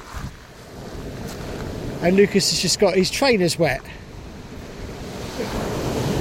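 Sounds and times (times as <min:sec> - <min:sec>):
sea waves washing onto the shore: 0:00.0 - 0:06.1
wind buffeting the microphone: 0:00.0 - 0:06.1
speech: 0:02.0 - 0:04.0.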